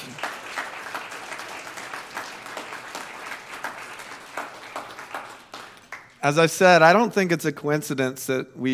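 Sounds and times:
audience applause in a room: 0.0 - 6.2
speech: 6.2 - 8.7.

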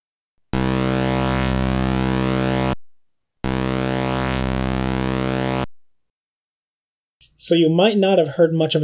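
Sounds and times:
AY and YM2149 sound chip envelope tones buzzing: 0.5 - 5.9
speech: 7.4 - 8.8.

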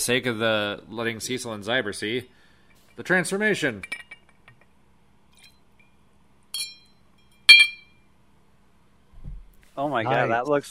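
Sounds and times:
speech: 0.0 - 2.4, 3.0 - 4.0, 9.8 - 10.7
bright clinks of a shot glass flipped into a glass of vodka and lemonade: 3.8 - 4.4, 6.5 - 8.0.

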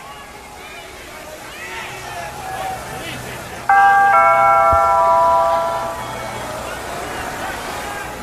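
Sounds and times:
murmuring background: 0.0 - 8.2
doorbell chiming with two bright ringing tones: 3.7 - 6.6.

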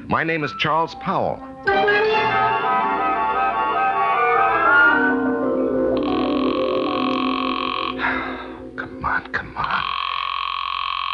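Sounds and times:
speech: 0.1 - 2.8
dense rattling drone: 2.6 - 10.1
telephone ringback tone while a call waits to be answered: 4.9 - 8.8.

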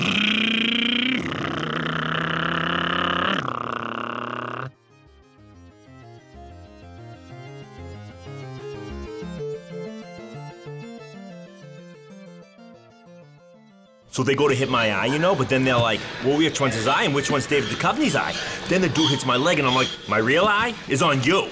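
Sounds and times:
man imitating a motorcycle engine with his mouth: 0.0 - 4.8
quiet melodic music: 4.5 - 21.5
speech: 14.2 - 21.5.

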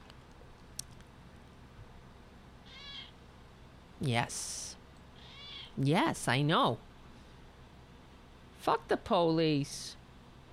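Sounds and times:
low steady hum: 0.0 - 10.5
single short high-pitched cat meow: 2.7 - 3.1
speech: 4.0 - 4.6, 5.8 - 6.9, 8.6 - 10.0.

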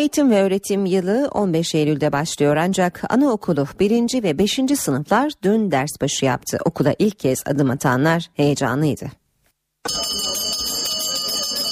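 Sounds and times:
speech: 0.0 - 9.2, 9.8 - 10.4
electric school bell ringing for first lesson: 9.8 - 11.7.

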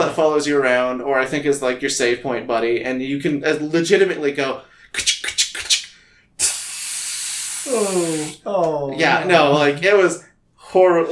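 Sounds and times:
speech: 0.1 - 5.4, 7.7 - 11.1
person imitating a spray paint can hissing: 5.0 - 8.5.

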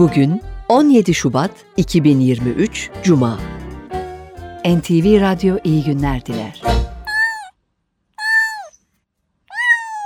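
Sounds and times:
speech: 0.0 - 3.6, 4.6 - 6.8
cat meowing: 7.1 - 7.5, 8.2 - 8.8, 9.5 - 10.0.

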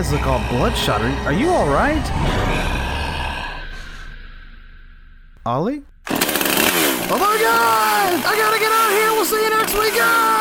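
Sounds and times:
speech: 0.0 - 2.8, 5.5 - 6.2, 7.1 - 10.3
heavy breathy exhalation: 0.0 - 5.4.

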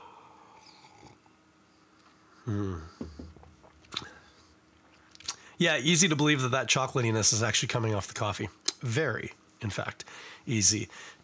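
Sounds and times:
person sipping a coffee beer: 0.4 - 1.3, 2.0 - 4.2
speech: 2.5 - 3.3, 5.6 - 11.2.

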